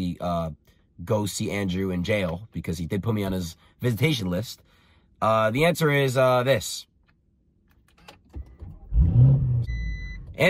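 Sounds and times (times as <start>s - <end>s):
speech: 0.0s - 6.9s
sports car engine revving: 8.6s - 10.4s.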